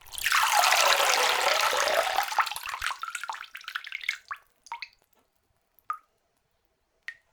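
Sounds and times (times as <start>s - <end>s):
water dribbling: 0.0s - 5.0s.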